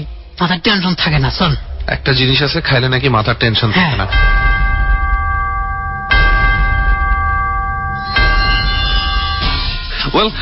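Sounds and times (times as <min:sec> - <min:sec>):
speech: 0:00.4 - 0:04.4, 0:10.1 - 0:10.4
low rumble: 0:01.0 - 0:09.7
bell ringing at midnight: 0:03.6 - 0:09.9.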